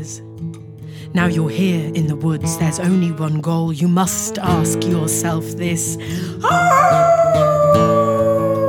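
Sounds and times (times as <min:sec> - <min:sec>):
speech: 0:01.1 - 0:07.0
wolf howling: 0:06.4 - 0:08.6.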